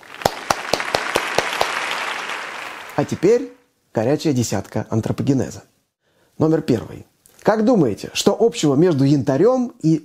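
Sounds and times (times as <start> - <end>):
sharp evenly spaced claps: 0.0 - 3.2
crowd applauding: 0.0 - 3.5
speech: 3.0 - 5.7, 6.4 - 10.0.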